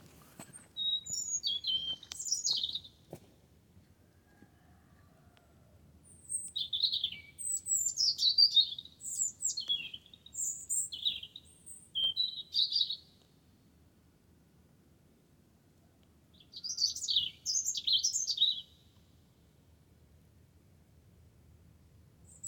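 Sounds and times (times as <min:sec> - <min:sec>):
wren singing: 0:00.8 - 0:02.9, 0:06.2 - 0:13.1, 0:16.4 - 0:18.8.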